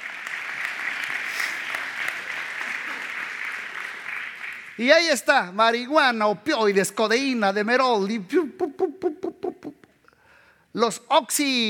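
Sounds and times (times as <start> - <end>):
audience clapping: 0.0 - 5.2
speech: 4.8 - 8.7, 10.8 - 11.6.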